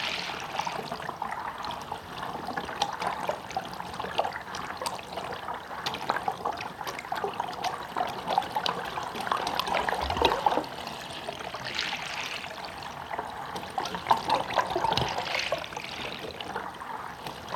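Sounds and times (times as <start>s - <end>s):
mountain spring water gurgling through a pipe: 0.0s - 17.5s.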